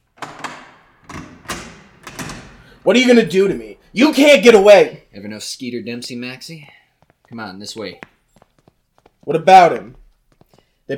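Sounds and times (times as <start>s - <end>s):
door latch and wooden frame clicking and knocking as a door opens: 0.0s - 3.4s
speech: 2.8s - 8.1s, 9.2s - 10.0s.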